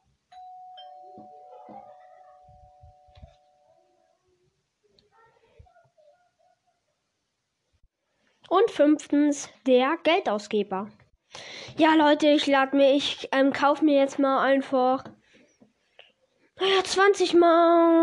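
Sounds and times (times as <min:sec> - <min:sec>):
doorbell with a sustained electronic tone: 0:00.3 - 0:04.0
speech: 0:08.5 - 0:15.1, 0:16.6 - 0:18.0.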